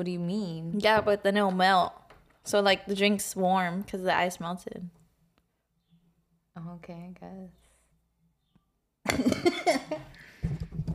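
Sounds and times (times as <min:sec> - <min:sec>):
speech: 0:00.0 - 0:05.0, 0:06.6 - 0:07.6, 0:09.0 - 0:10.9
person coughing: 0:09.1 - 0:10.1.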